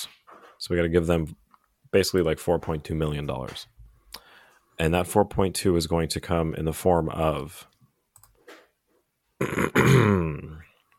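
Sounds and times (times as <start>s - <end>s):
speech: 0.6s - 3.8s, 4.8s - 7.7s, 9.4s - 10.4s
breaths: 4.0s - 4.8s
man clearing throat: 9.4s - 10.6s.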